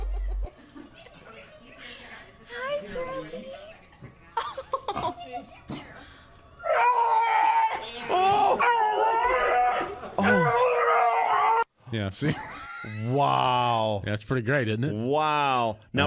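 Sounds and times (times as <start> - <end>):
laughter: 0.0 - 1.4, 4.3 - 5.5, 9.8 - 10.7, 12.2 - 13.4
dog howling: 6.6 - 11.7
speech: 12.0 - 16.0.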